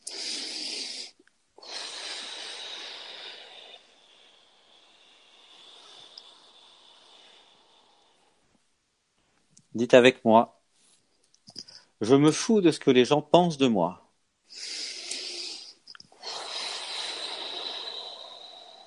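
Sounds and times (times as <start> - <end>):
deep breath: 0.0 - 8.6, 14.5 - 18.8
speech: 9.8 - 10.6, 12.0 - 14.7.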